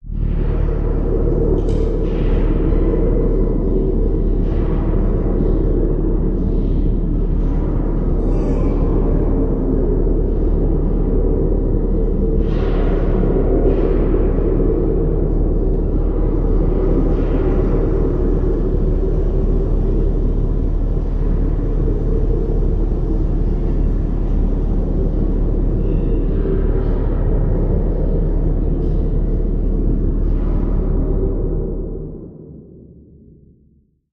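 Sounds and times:
deep low motor drone: 0:00.0 - 0:34.1.

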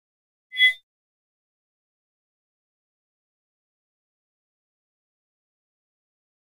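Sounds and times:
short electronic mouse-over sound: 0:00.6 - 0:00.8.

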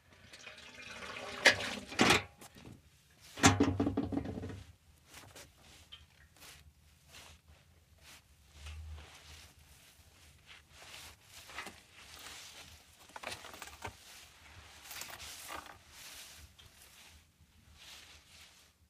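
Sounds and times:
bucket being set down with a squee: 0:00.2 - 0:04.6.

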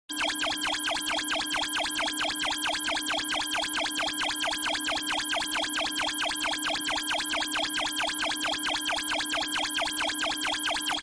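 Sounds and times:
computer read out alarm: 0:00.1 - 0:11.0.

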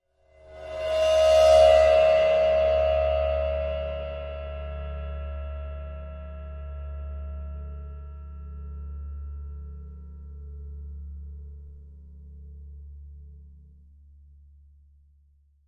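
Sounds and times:
old ride cymbal bowed: 0:00.4 - 0:10.4.

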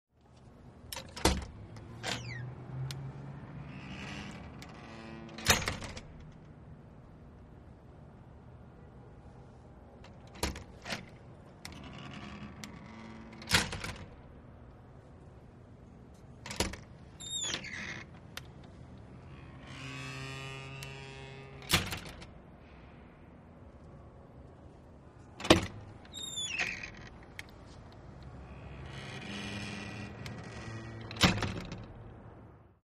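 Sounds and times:
industrial push bar door opening and closing: 0:00.9 - 0:03.0, 0:03.6 - 0:06.5, 0:10.0 - 0:14.3, 0:16.4 - 0:22.4, 0:25.3 - 0:32.1.

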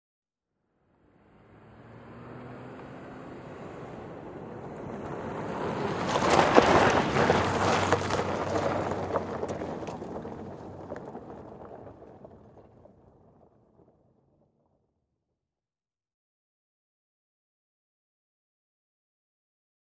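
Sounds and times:
SUV truck driving from pavement onto gravel: 0:00.8 - 0:14.4.

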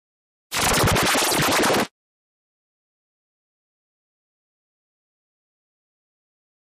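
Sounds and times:
distorted warble: 0:00.5 - 0:01.9.

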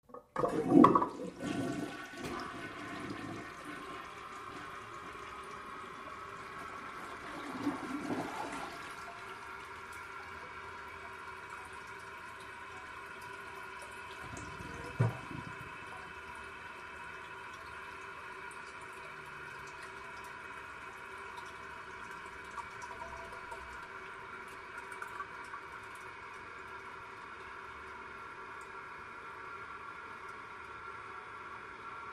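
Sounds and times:
public toilet flushing: 0:00.0 - 0:32.0.

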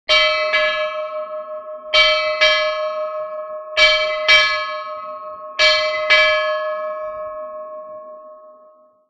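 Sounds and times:
ship bell double ring: 0:00.1 - 0:09.0.

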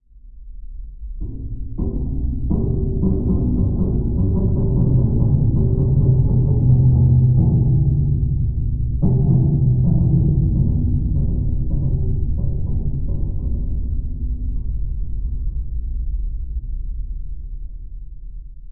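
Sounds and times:
metal groaning underwater: 0:01.2 - 0:16.0.

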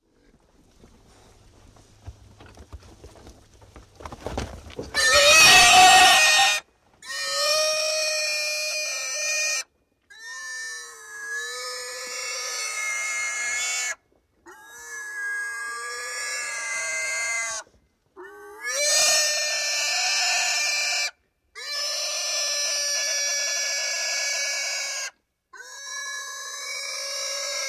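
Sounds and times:
upset pig screaming: 0:05.0 - 0:17.6, 0:18.2 - 0:27.6.

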